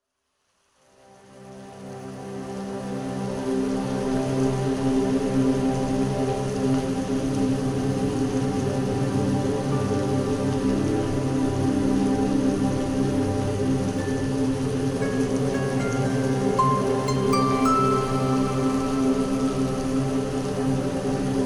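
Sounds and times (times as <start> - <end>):
morning rain: 0.9 - 21.4.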